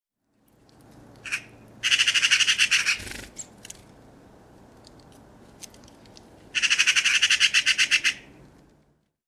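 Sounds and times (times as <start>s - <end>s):
Eurasian magpie (Pica pica) chattering: 1.2s - 3.3s, 6.6s - 8.3s.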